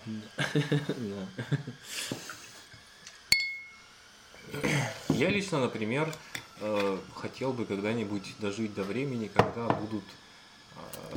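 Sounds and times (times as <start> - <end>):
speech: 0.1 - 2.4, 4.5 - 10.2, 10.8 - 11.1
glass clink with shimmering tone: 3.3 - 3.9.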